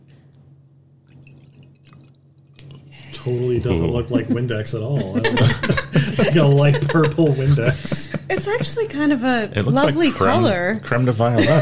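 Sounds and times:
low hum: 0.0s - 11.6s
liquid pouring into a glass: 1.0s - 2.9s
speech: 3.2s - 11.6s
laughter: 3.7s - 10.3s, 11.3s - 11.6s.

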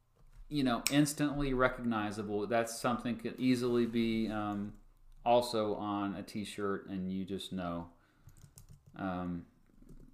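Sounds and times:
speech: 0.5s - 8.0s, 9.0s - 9.5s
computer keyboard typing: 8.3s - 10.1s.

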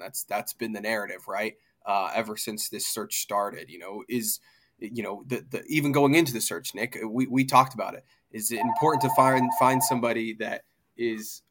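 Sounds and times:
speech: 0.0s - 11.4s
phone ringing with a steady electronic tone: 8.6s - 10.0s.

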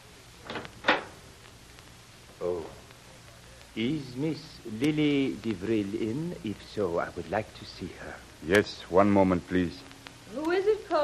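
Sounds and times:
door being opened: 0.4s - 1.2s
speech: 3.8s - 11.0s.

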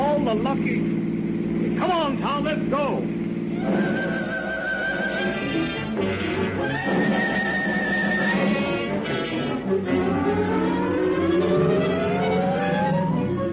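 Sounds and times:
police motorcycle engines roaring: 0.0s - 13.5s
speech: 0.3s - 1.1s, 1.8s - 4.4s
police motorcycle sirens wailing in pursuit of a speeding car: 3.4s - 13.5s.

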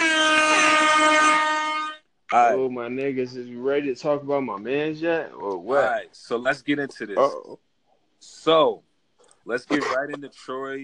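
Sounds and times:
air horn sound effect blast: 0.0s - 2.0s
speech: 2.3s - 7.6s, 8.2s - 8.9s, 9.5s - 10.8s.

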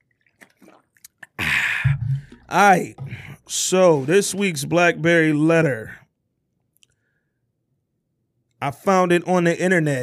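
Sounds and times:
wet slurping clicks from drinking out of a plastic water bottle: 0.0s - 3.5s
speech: 2.5s - 6.0s, 8.6s - 10.0s.

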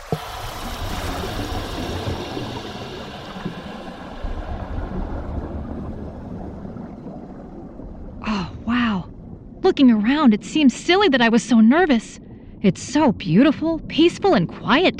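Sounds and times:
bubbling gurgling water from divers deflating BCDs underwater: 0.0s - 9.9s
speech: 9.8s - 14.9s.

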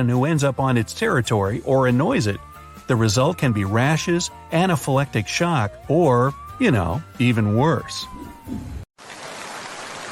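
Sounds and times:
speech: 0.0s - 8.8s
steady hiss of rain falling: 9.0s - 10.1s.

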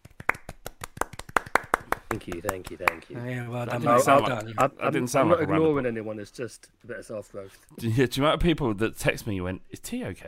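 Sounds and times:
few people applauding with quick uneven claps: 0.0s - 4.8s
speech: 2.1s - 10.2s.

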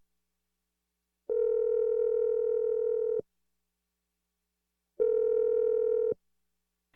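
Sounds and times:
long steady telephone ringing tones: 1.3s - 3.2s, 5.0s - 6.2s.

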